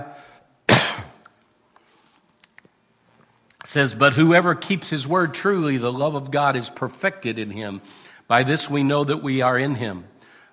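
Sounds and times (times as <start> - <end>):
person coughing from a tickle in the throat: 0.7 - 1.2
speech: 3.7 - 10.1.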